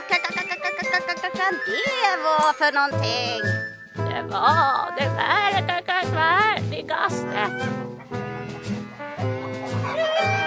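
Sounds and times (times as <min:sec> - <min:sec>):
steady tonal background: 0:00.2 - 0:10.0
speech: 0:01.5 - 0:03.6, 0:04.2 - 0:07.9
hens cackling: 0:07.0 - 0:10.4.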